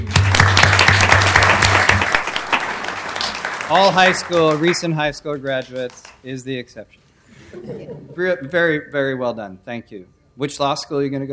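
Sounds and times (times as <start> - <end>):
crowd applauding: 0.0 - 6.2
speech: 3.7 - 11.3
laughter: 7.4 - 8.5.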